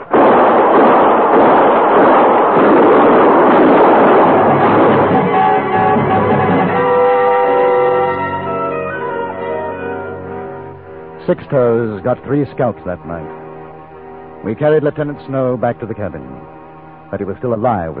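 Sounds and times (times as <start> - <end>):
heavy gunfire in a radio drama shoot-out: 0.0 - 8.4
steady tones: 0.0 - 17.9
speech: 11.3 - 13.4, 14.4 - 16.5, 17.1 - 17.9.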